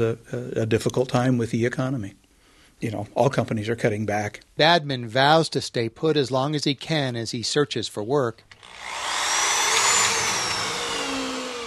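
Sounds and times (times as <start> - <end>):
speech: 0.0 - 2.2, 2.8 - 9.1
power drill driving screws into deck planks: 8.5 - 11.6.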